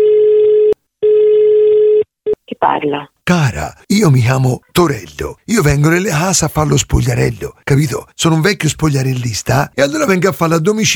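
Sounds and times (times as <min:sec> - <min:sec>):
telephone ringing tone on a call line: 0:00.0 - 0:02.1
speech: 0:02.6 - 0:10.9.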